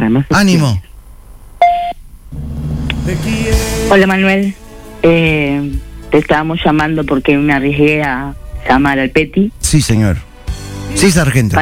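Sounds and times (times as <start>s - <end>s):
speech: 0.0s - 0.9s, 3.1s - 10.3s, 11.0s - 11.6s
low steady hum: 0.0s - 9.7s
voicemail beep tone: 1.6s - 2.0s.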